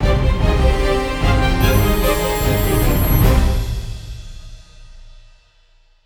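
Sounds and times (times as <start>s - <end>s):
orchestral battle end background music: 0.0s - 4.7s.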